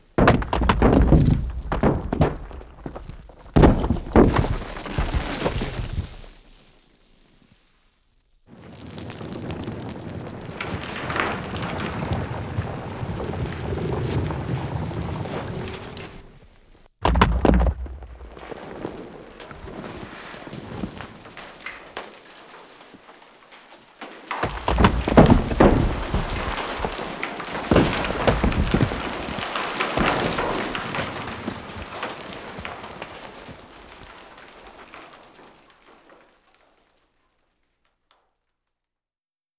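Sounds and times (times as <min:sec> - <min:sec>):
landslide with rocks: 0:00.0 - 0:38.2.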